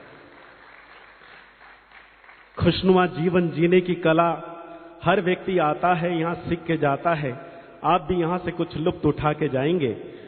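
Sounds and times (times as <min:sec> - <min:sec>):
audience clapping hands loudly at a gathering: 0:00.0 - 0:03.0
speech: 0:02.6 - 0:10.1.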